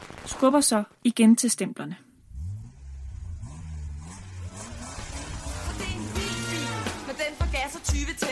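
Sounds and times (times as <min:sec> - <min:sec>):
speech: 0:00.3 - 0:02.1
car engine running and revving: 0:02.2 - 0:07.9.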